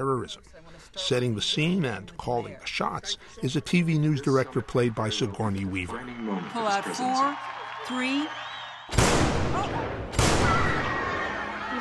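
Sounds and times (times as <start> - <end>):
speech: 0.0 - 10.6
gunshots in a presidential assassination attempt: 8.9 - 11.4.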